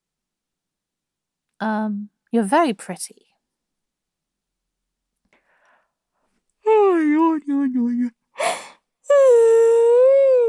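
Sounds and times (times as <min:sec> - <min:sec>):
speech: 0:01.6 - 0:03.3, 0:07.5 - 0:08.2
person yawning: 0:08.4 - 0:10.4.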